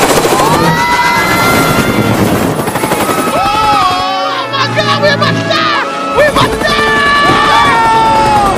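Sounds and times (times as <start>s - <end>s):
helicopter rotor roaring chaotically: 0.0s - 8.5s
voices shouting: 0.4s - 8.5s.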